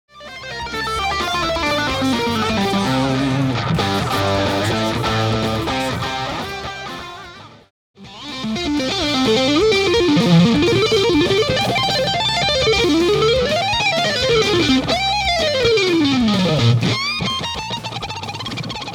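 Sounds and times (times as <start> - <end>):
boosted lead guitar: 0.1 - 18.9.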